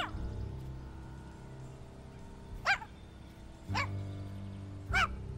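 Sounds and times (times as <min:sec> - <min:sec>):
puppies barking: 0:00.0 - 0:00.2, 0:02.6 - 0:03.0, 0:03.7 - 0:04.0, 0:04.9 - 0:05.2.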